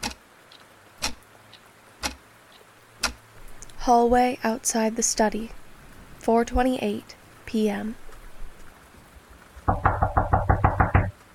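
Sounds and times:
speech: 0:03.9 - 0:05.6, 0:06.2 - 0:08.0
pounding on a locked door in a hallway outside a study: 0:09.7 - 0:11.2.

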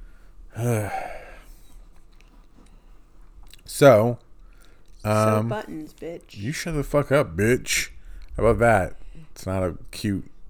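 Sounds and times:
speech: 0:00.6 - 0:01.0, 0:03.8 - 0:04.2, 0:05.0 - 0:10.3
person yawning: 0:00.6 - 0:01.4.

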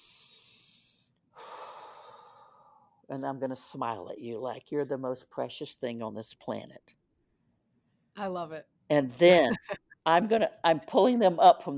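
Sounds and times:
deep human breath: 0:00.0 - 0:03.0
speech: 0:03.1 - 0:07.0, 0:08.2 - 0:11.7.

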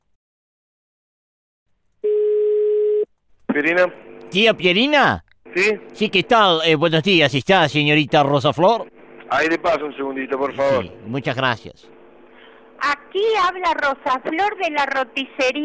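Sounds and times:
telephone ringback tones heard through the line: 0:02.1 - 0:03.1
speech: 0:03.6 - 0:12.0, 0:12.8 - 0:15.6.

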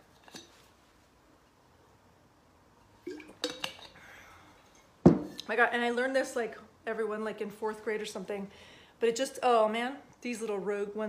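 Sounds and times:
glass clinking: 0:03.1 - 0:04.0
glass set down with a solid knock: 0:05.0 - 0:05.4
speech: 0:05.5 - 0:11.0.

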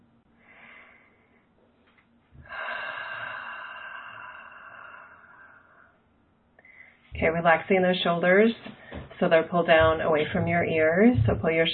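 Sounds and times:
deep breathing in through the nose and out through the mouth: 0:00.4 - 0:01.6, 0:02.4 - 0:07.1
speech: 0:07.2 - 0:11.7.

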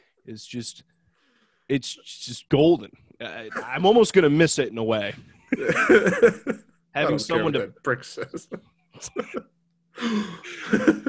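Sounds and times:
speech: 0:00.3 - 0:01.0, 0:01.7 - 0:11.0
laughter: 0:05.5 - 0:06.8, 0:08.0 - 0:09.5, 0:10.2 - 0:11.0
person gasping: 0:10.0 - 0:10.7.

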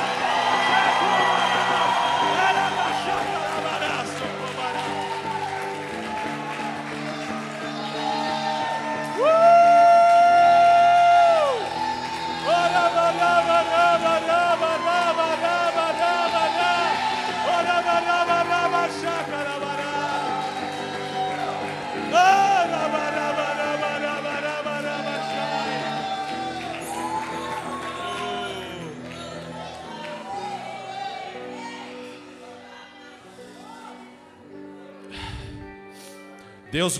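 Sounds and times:
large group of people shouting a victory cry: 0:00.0 - 0:34.2
speech: 0:36.8 - 0:36.9.

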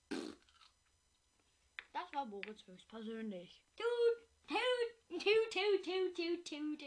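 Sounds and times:
short loud fart: 0:00.0 - 0:00.7
speech: 0:02.1 - 0:04.1, 0:05.2 - 0:06.8.

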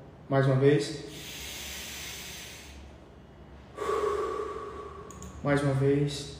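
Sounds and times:
speech: 0:00.3 - 0:01.2, 0:05.4 - 0:06.3
deep forceful breathing in and out: 0:01.0 - 0:05.8.

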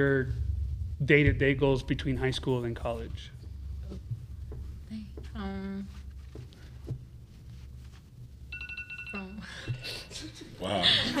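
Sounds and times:
speech: 0:00.0 - 0:00.4, 0:01.0 - 0:04.1, 0:04.9 - 0:06.0, 0:10.6 - 0:11.1
low hum: 0:00.0 - 0:11.1
phone alarm chiming electronic tones: 0:08.5 - 0:10.2
laughter: 0:09.8 - 0:11.1.

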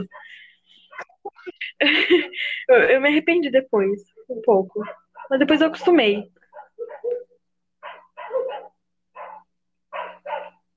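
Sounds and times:
speech: 0:00.0 - 0:00.5, 0:01.6 - 0:06.4
laughter: 0:00.8 - 0:02.7
dogs barking in short sharp yaps: 0:04.8 - 0:10.7.

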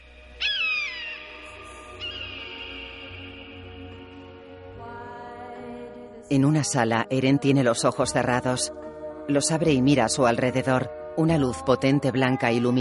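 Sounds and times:
bird calling in flight: 0:00.0 - 0:04.1
sustained tonal drone: 0:00.0 - 0:12.8
speech: 0:06.3 - 0:12.8.

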